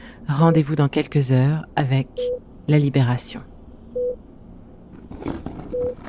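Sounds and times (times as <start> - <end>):
speech: 0.3 - 3.5
machine giving short electronic beeps: 2.2 - 2.4, 4.0 - 4.2
rustling clattering noise: 4.9 - 6.0.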